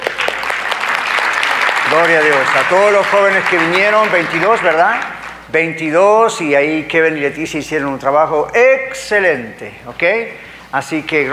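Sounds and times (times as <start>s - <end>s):
audience applauding: 0.0s - 5.4s
speech: 1.9s - 11.3s.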